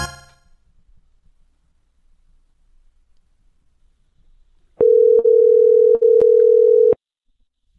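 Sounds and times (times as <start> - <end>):
telephone dial tone while dialing back a caller: 4.8 - 7.0.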